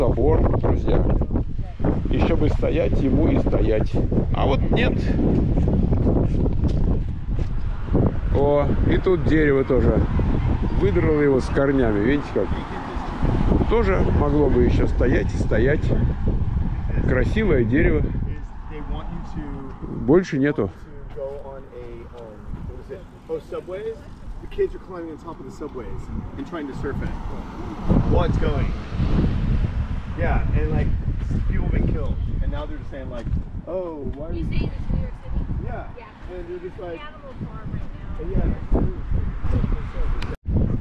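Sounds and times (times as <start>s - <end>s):
strong wind blowing outdoors buffeting the microphone: 0.0s - 40.7s
speech: 0.2s - 1.2s, 2.4s - 12.8s, 13.7s - 16.3s, 17.0s - 18.2s, 20.1s - 21.4s, 23.3s - 29.3s, 30.2s - 40.4s.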